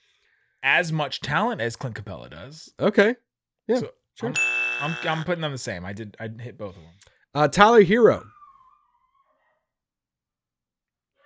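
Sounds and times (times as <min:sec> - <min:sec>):
speech: 0:00.6 - 0:08.3
dog whimpering in a high whine: 0:08.2 - 0:09.7.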